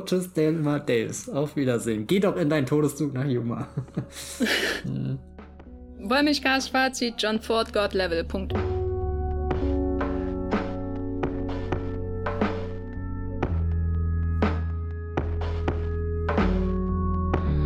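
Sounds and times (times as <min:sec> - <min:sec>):
speech: 0:00.0 - 0:05.3, 0:06.0 - 0:08.7
laughter: 0:03.6 - 0:05.2
rhythmic drum hits of a street protest march outside: 0:09.6 - 0:13.6, 0:14.4 - 0:17.5.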